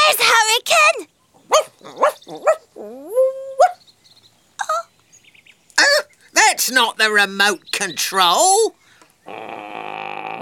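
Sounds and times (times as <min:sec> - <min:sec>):
speech: 0:00.2 - 0:03.1, 0:06.7 - 0:09.6
dog barking outside: 0:01.5 - 0:02.7, 0:03.6 - 0:03.8.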